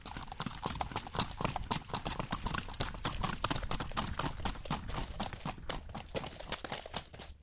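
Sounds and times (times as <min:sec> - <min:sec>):
criollo mare's hooves trotting and galloping on an unpaved dirt road: 0:00.0 - 0:07.4.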